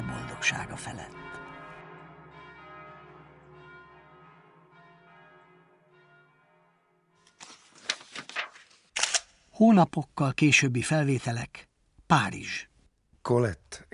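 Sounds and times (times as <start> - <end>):
massive church bells booming and ringing: 0.0 - 7.2
speech: 0.4 - 1.3, 9.6 - 13.9.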